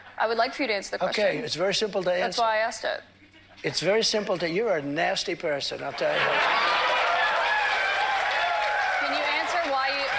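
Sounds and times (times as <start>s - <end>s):
speech: 0.2s - 6.8s
audience cheering and applauding: 6.2s - 10.1s
whoops from crowd: 6.6s - 9.5s.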